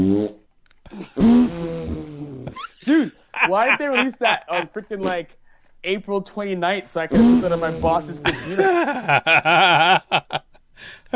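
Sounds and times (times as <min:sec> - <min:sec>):
speech: 0:00.0 - 0:01.4, 0:03.5 - 0:11.1
fart sound effect played from a website: 0:00.0 - 0:02.6, 0:07.1 - 0:08.3
laughter: 0:02.5 - 0:05.2, 0:07.8 - 0:11.1.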